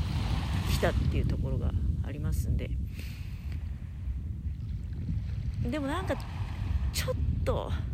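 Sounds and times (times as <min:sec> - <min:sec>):
continuous wash of waves at Yamanoshita Seaside Park: 0:00.0 - 0:07.9
low rumbling wind buffeting the microphone at Yamanoshita Seaside Park: 0:00.0 - 0:07.9
speech: 0:00.8 - 0:03.2, 0:05.6 - 0:06.4, 0:07.0 - 0:07.9.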